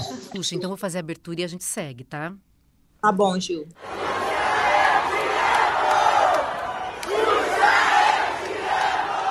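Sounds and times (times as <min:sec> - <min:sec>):
speech: 0:00.3 - 0:04.0
large crowd shouting a rhythmic chant in unison: 0:03.8 - 0:09.2.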